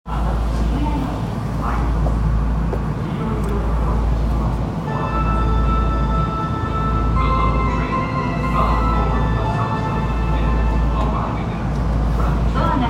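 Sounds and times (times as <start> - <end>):
Ginza Line train sounds: 0.1 - 12.8.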